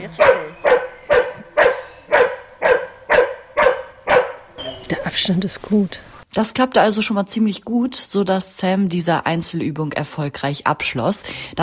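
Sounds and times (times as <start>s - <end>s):
speech: 0.0s - 0.4s, 5.2s - 11.6s
dog in search training barking: 0.1s - 4.8s.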